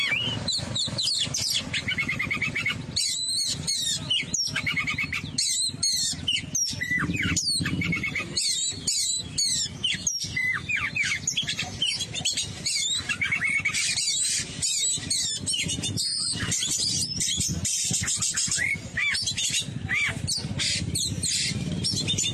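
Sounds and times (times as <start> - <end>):
Oriental magpie-robin singing: 0.0 - 22.3.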